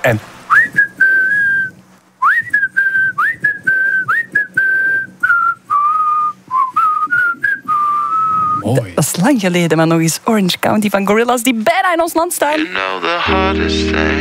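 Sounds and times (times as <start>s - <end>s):
speech: 0.0s - 0.3s, 8.7s - 14.1s
person whistling a lively melody: 0.5s - 8.6s.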